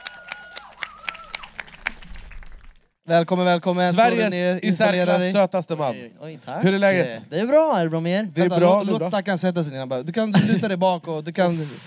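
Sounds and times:
audience applause in a steady rhythmic beat: 0:00.0 - 0:03.0
speech: 0:03.1 - 0:11.8.

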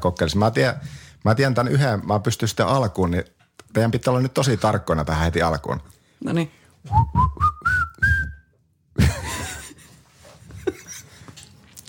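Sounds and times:
speech: 0:00.0 - 0:07.8
person whistling a short tune: 0:06.9 - 0:08.5.

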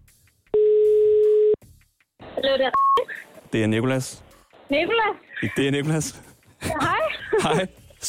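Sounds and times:
phone ringback tone: 0:00.6 - 0:01.6
speech: 0:02.4 - 0:08.0
laughter: 0:06.6 - 0:07.8.

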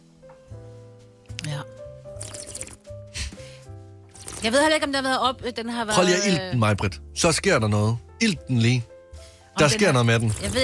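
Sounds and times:
speech: 0:01.5 - 0:02.3, 0:04.4 - 0:08.9, 0:09.6 - 0:10.6
water pouring and splashing into a glass: 0:02.2 - 0:02.8, 0:04.1 - 0:04.5.

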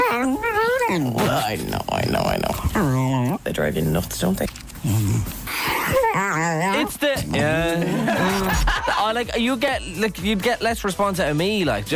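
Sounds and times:
dog whining and yipping: 0:00.0 - 0:01.5, 0:02.6 - 0:03.2, 0:05.5 - 0:07.0
speech: 0:01.0 - 0:11.9
laughter: 0:07.5 - 0:09.3.

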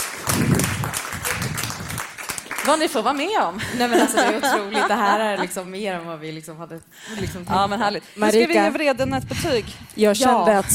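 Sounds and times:
applause from a small group: 0:00.0 - 0:03.6
speech: 0:02.7 - 0:10.7
laughter: 0:03.6 - 0:05.8.

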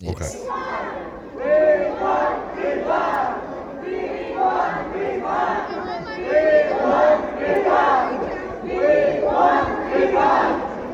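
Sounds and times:
crowd of protesters on a cruise ship chanting a slogan: 0:00.1 - 0:10.9.

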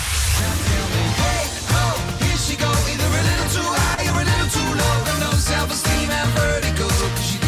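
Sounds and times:
pop song with driving beat, bass and sung vocal melody: 0:00.0 - 0:07.4.

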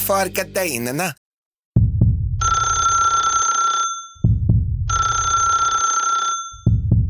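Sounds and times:
speech: 0:00.1 - 0:01.2
deep heartbeat-like thumps: 0:01.8 - 0:02.4, 0:04.2 - 0:04.9, 0:06.7 - 0:07.0
telephone ringing shrilly: 0:02.4 - 0:04.2, 0:04.9 - 0:06.8.

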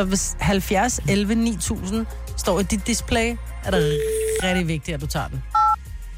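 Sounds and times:
speech: 0:00.0 - 0:05.6
telephone keypad tones as a phone number is dialled: 0:03.8 - 0:04.5.

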